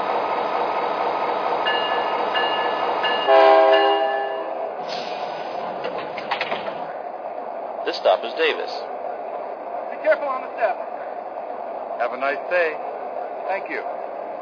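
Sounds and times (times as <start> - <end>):
passenger train rumbling with wheels clattering on track: 0.0 - 14.4
loud brassy passenger train horn blast: 3.2 - 4.7
speech: 8.2 - 9.0, 10.0 - 10.9, 12.0 - 12.9, 13.5 - 14.0.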